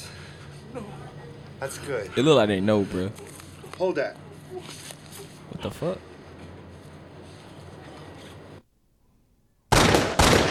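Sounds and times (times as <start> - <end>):
speech: 0.8 - 4.8, 5.6 - 6.1
burst of gunfire: 9.7 - 10.4.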